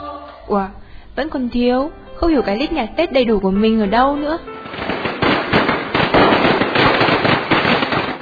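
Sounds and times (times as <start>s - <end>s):
speech: 0.5s - 4.5s
firecrackers exploding: 4.5s - 8.1s.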